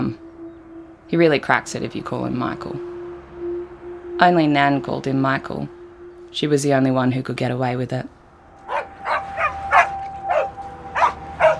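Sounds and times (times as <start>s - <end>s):
speech: 1.1s - 2.9s, 4.2s - 8.2s
dog chained to a fence barking: 8.7s - 11.5s.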